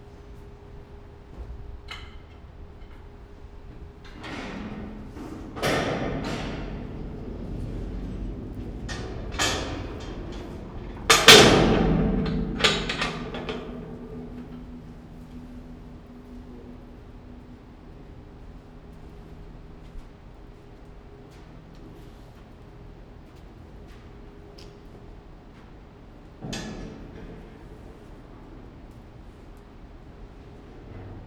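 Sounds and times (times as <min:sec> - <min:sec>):
grates opening at Nyíregyháza zoo: 0:04.0 - 0:20.0.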